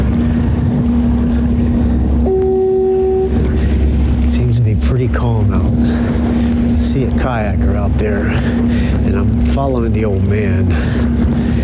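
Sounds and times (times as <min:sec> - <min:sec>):
heavy wind noise: 0:00.0 - 0:11.6
low constant droning hum: 0:00.0 - 0:11.6
foghorn blast at harbor entrance: 0:02.2 - 0:03.9
speech: 0:09.6 - 0:11.1.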